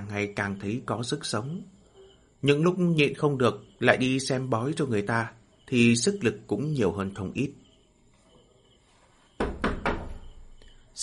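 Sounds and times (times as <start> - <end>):
speech: 0.2 - 1.7, 2.4 - 7.6
knocking on the courtyard door of a Taoist temple: 9.4 - 10.4.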